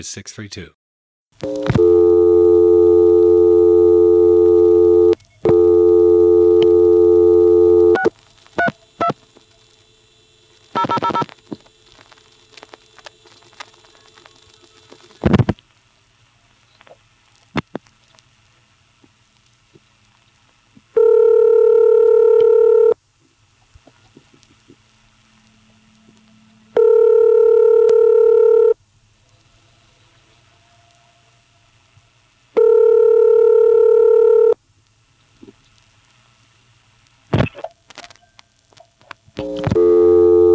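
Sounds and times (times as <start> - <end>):
speech: 0.0 - 0.8, 1.4 - 2.1
telephone ringing or signaling tone: 1.4 - 8.1, 21.0 - 23.0, 26.7 - 28.8, 32.6 - 34.6, 39.4 - 40.5
telephone dial tone through an electromechanical switching exchange: 1.4 - 9.2, 10.8 - 11.3, 21.0 - 23.0, 26.7 - 28.8, 32.6 - 34.6, 39.4 - 40.5.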